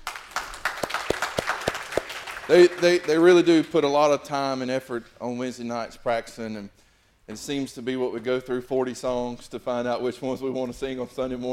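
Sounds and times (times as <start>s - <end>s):
congregation applauding a church worship team: 0.0s - 3.7s
speech: 2.5s - 11.5s.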